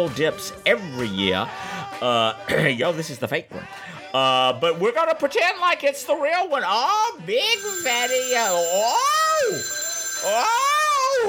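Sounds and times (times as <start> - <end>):
speech: 0.0 - 11.2
telephone ringing: 7.5 - 11.2.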